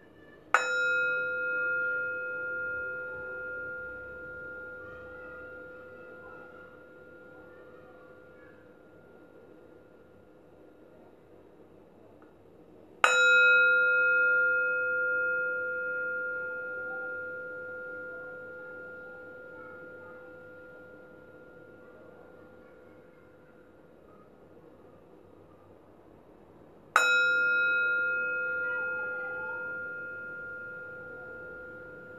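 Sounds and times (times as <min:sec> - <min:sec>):
meditation bell struck and ringing: 0:00.5 - 0:10.1, 0:13.0 - 0:23.7, 0:27.0 - 0:32.1.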